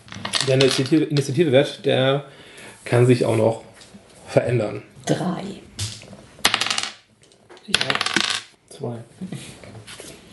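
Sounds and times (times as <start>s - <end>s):
six-sided dice rolling on a table: 0.1s - 1.3s, 5.8s - 8.6s
speech: 0.5s - 3.7s, 4.3s - 5.7s, 7.7s - 8.2s, 8.8s - 9.9s.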